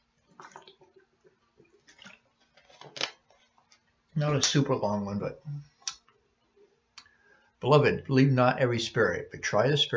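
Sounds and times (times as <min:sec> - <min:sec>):
person sipping and gulping water: 0:00.0 - 0:03.9
speech: 0:04.2 - 0:05.7, 0:07.6 - 0:09.9.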